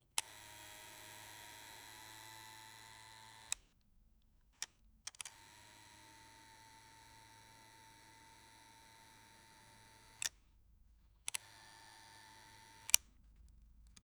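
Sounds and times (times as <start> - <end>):
recording camera zoom motor: 0.2 - 3.6, 5.3 - 10.4, 11.3 - 13.2.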